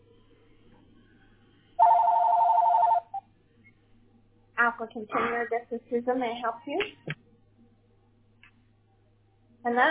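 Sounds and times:
business telephone ringing with an electronic warble: 1.8 - 3.2
speech: 4.8 - 7.1, 9.7 - 9.8.

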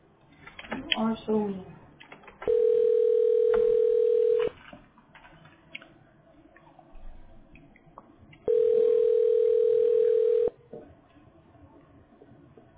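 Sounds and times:
faint noise: 0.0 - 12.7
speech: 1.0 - 1.8
phone ringback tone over the line: 2.5 - 4.5, 8.5 - 10.5.

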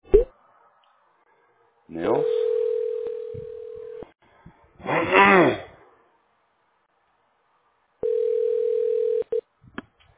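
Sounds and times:
speech: 1.9 - 2.5
telephone ringback tone while placing a call: 2.2 - 4.0, 8.0 - 9.4
person clearing throat: 4.8 - 5.7.

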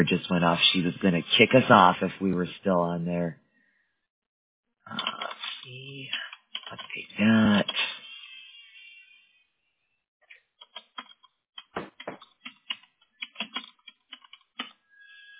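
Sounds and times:
speech: 0.0 - 3.4, 4.9 - 7.9
typing on a computer keyboard, entering text into a form field: 6.5 - 6.9, 10.6 - 14.8.

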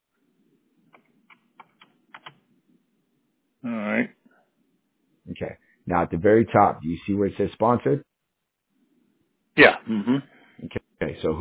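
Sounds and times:
faint keystrokes on a computer keyboard typing a search: 0.9 - 2.4
speech: 3.6 - 4.2, 5.4 - 8.1, 9.6 - 11.4.

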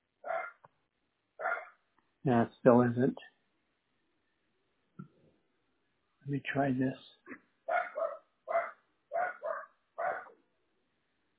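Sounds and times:
dog barking at another dog: 0.2 - 0.6, 1.4 - 1.8, 7.7 - 10.4
speech: 2.2 - 3.3, 6.3 - 7.1.

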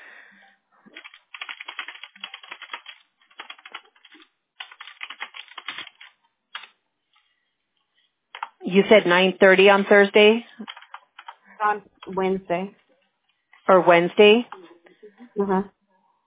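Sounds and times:
rapid typing on a computer keyboard: 0.9 - 6.8, 8.3 - 8.6, 10.6 - 11.4
speech: 8.7 - 10.5, 11.6 - 12.8, 13.7 - 14.6, 15.4 - 15.7.

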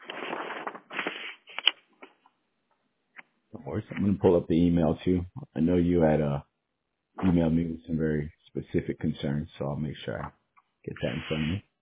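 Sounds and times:
sheets of paper being shuffled and straightened: 0.0 - 2.3
speech: 3.8 - 6.5, 7.2 - 11.7.

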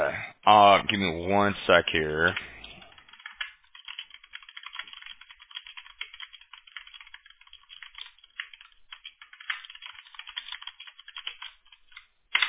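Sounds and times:
speech: 0.5 - 2.6
person typing a message on a keyboard: 2.2 - 12.4.

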